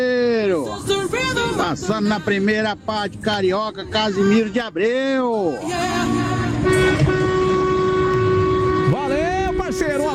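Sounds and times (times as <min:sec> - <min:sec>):
busy road: 0:00.0 - 0:10.1
speech: 0:01.7 - 0:06.3, 0:09.8 - 0:10.1
vehicle horns honking in celebration: 0:05.6 - 0:10.1.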